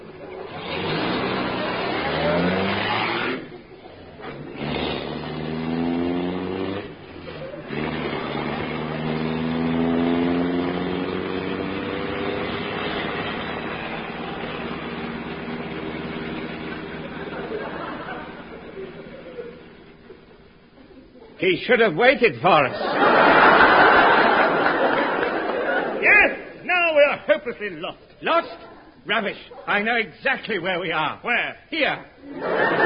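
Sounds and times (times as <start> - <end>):
car engine revving as the car drives off: 0.5 - 20.1
laughter: 7.2 - 9.2, 16.7 - 21.4, 22.5 - 27.9, 32.2 - 32.8
speech: 21.4 - 23.1, 27.4 - 32.8.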